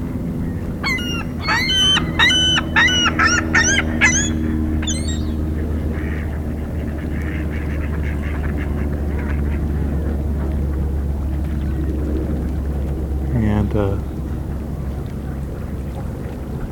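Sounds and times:
low rumble: 0.0 - 16.7
mallard ducks quacking: 0.8 - 9.9.

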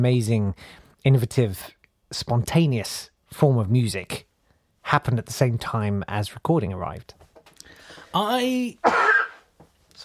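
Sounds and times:
speech: 0.0 - 4.3, 4.9 - 7.2, 8.1 - 9.0
voiced throat-clearing grunt: 8.8 - 9.4
harsh breathy cough burst: 8.8 - 9.5.

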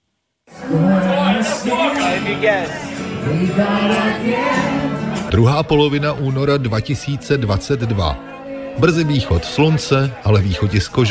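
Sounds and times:
group of young voices singing together in a music bar: 0.5 - 5.4
chatter-like murmur in a crowded room: 0.5 - 11.1
speech: 1.6 - 11.1.

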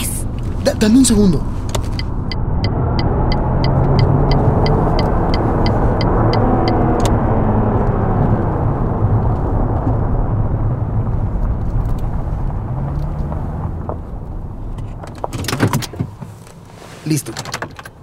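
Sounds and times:
car engine and road rumble: 0.0 - 18.0
speech: 0.8 - 1.6
turn signal ticking: 1.6 - 7.2.

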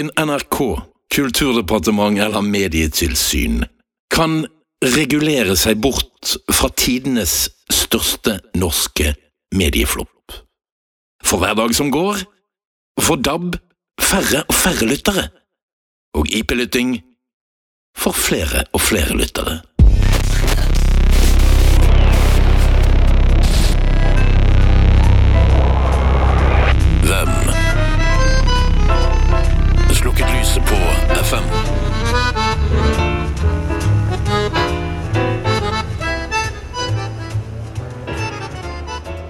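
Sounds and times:
speech: 0.0 - 10.5, 11.2 - 12.4, 13.0 - 15.4, 16.1 - 17.1, 18.0 - 19.7
FM radio reception hiss and static: 19.8 - 37.6.

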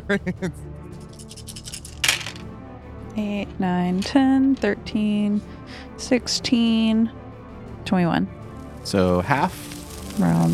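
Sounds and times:
person humming or vocalizing: 0.0 - 0.5, 10.0 - 10.5
speech: 0.1 - 0.8, 3.2 - 7.2, 7.9 - 10.5
eight six-sided dice clattering as they are rolled: 1.1 - 2.4.

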